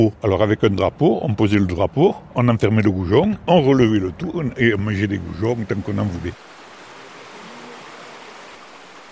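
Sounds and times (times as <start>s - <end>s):
speech: 0.0s - 6.6s
river water rushing: 4.6s - 9.1s.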